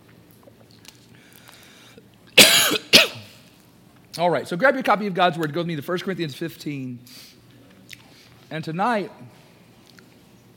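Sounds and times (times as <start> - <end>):
harsh breathy coughs with a throaty rasp: 2.4 - 3.4
speech: 4.2 - 7.2, 8.5 - 9.4.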